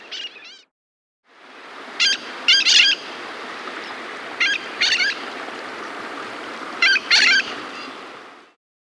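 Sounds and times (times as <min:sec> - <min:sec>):
background hiss: 0:01.4 - 0:08.5
mitred parakeet Aratinga mitrata screeching in South America: 0:01.9 - 0:03.1, 0:06.8 - 0:07.9.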